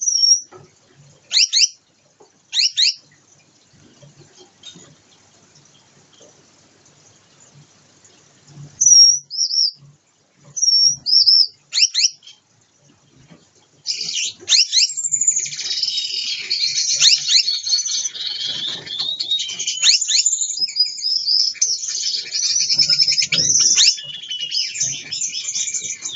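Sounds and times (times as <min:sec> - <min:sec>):
Gouldian finch song during pair formation courtship dance: 0:00.0 - 0:00.6, 0:01.3 - 0:01.8, 0:02.5 - 0:03.1, 0:08.8 - 0:12.4, 0:13.8 - 0:26.1.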